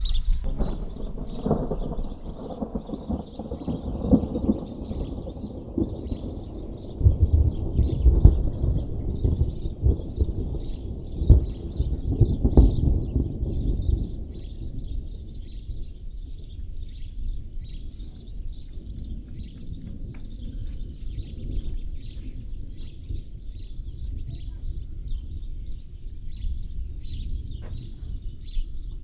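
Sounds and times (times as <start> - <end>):
distant rumbling thunder: 0.0 - 28.4.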